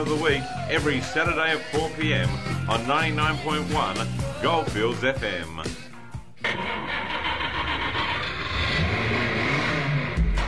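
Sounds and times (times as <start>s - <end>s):
speech: 0.0s - 5.8s
car engine revving: 6.4s - 10.4s.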